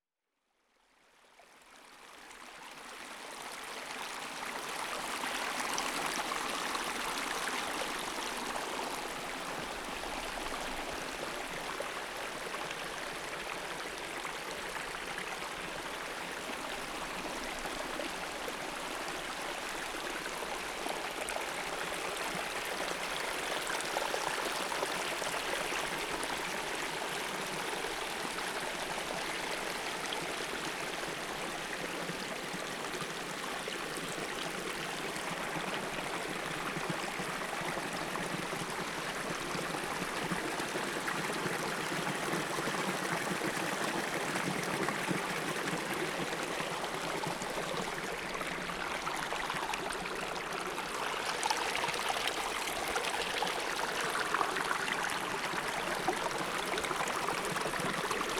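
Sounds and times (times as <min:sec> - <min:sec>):
stream: 0:01.0 - 0:58.3.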